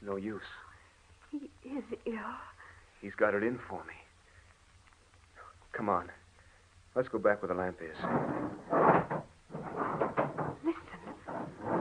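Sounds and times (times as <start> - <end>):
speech: 0.1 - 0.7, 1.3 - 4.0, 5.7 - 6.2, 6.9 - 9.8
furniture dragged and shoved against a door: 8.0 - 11.8
heavy thuds and wooden knocks of a man barricading a door: 8.0 - 11.8.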